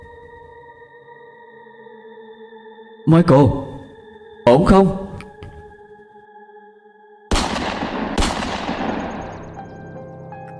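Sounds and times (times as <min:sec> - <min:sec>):
speech: 0:03.1 - 0:03.7, 0:04.5 - 0:05.0
gunshots: 0:07.3 - 0:09.6.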